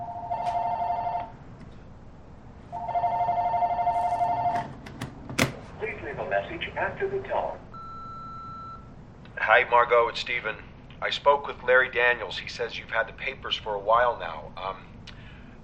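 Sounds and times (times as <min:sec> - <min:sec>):
telephone ringing with electronic trilling: 0:00.0 - 0:01.4, 0:02.7 - 0:04.8
speech: 0:06.5 - 0:07.6, 0:09.5 - 0:14.9.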